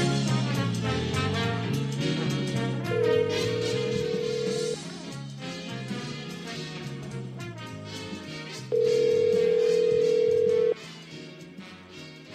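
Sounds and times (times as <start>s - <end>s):
music: 0.0s - 12.3s
ringback tone from an outgoing phone call: 3.0s - 4.8s, 8.7s - 10.8s.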